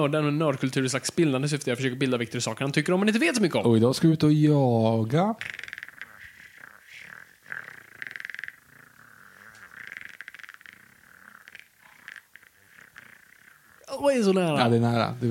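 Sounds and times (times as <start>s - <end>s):
speech: 0.0s - 5.6s, 14.1s - 15.2s
person imitating a velociraptor call: 5.4s - 14.2s.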